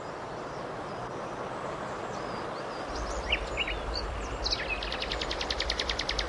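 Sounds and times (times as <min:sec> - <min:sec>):
flowing river rushing after much rain: 0:00.0 - 0:06.2
bird chirps and rhythmic trill by a river on a sunny spring day: 0:03.0 - 0:06.2.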